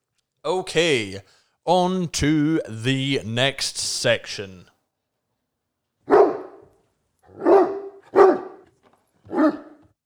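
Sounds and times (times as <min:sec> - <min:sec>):
speech: 0:00.4 - 0:04.7
dog barking gruffly: 0:06.1 - 0:06.7, 0:07.3 - 0:08.7, 0:09.3 - 0:09.8.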